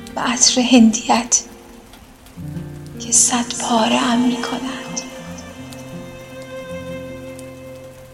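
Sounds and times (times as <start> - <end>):
rain pattering: 0.0 - 8.1
speech: 0.2 - 1.5, 2.4 - 5.1
humming tonal drone: 3.0 - 7.6.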